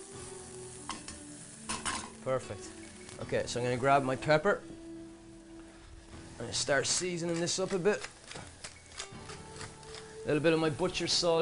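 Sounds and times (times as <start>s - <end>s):
shallots and garlic frying in a hot pan: 0.0s - 11.4s
speech: 2.2s - 4.8s, 6.4s - 8.5s, 10.3s - 11.4s.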